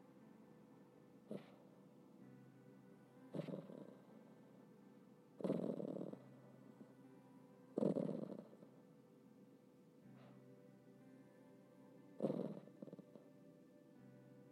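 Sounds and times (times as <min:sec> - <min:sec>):
dog growling softly in its sleep while dreaming: 0:01.3 - 0:01.7, 0:03.3 - 0:04.1, 0:05.4 - 0:06.3, 0:07.8 - 0:08.7, 0:12.2 - 0:13.3.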